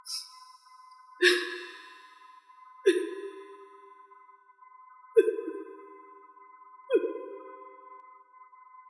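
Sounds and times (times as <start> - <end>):
person sobbing: 1.2 - 1.8, 2.9 - 3.4.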